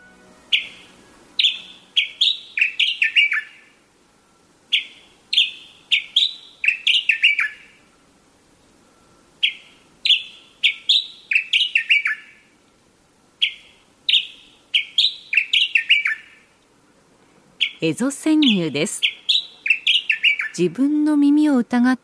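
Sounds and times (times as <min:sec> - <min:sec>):
wild birds singing behind a shop in town at night: 0:00.0 - 0:20.8
speech: 0:17.8 - 0:19.1, 0:20.6 - 0:22.0.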